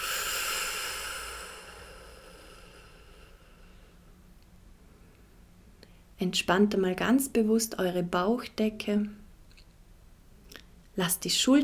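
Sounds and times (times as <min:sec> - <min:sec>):
person breathing out deeply during a guided relaxation breathing exercise: 0:00.0 - 0:04.0
speech: 0:06.2 - 0:09.2, 0:11.0 - 0:11.6.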